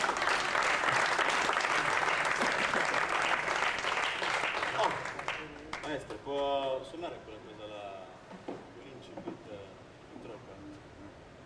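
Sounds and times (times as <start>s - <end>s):
large audience applause: 0.0s - 6.1s
speech: 6.3s - 7.8s.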